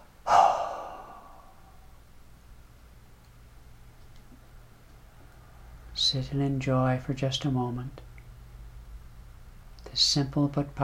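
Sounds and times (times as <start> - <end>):
deep inhale and exhale in a guided relaxation breathing exercise: 0.2 - 1.9
speech: 6.0 - 8.1, 10.0 - 10.8.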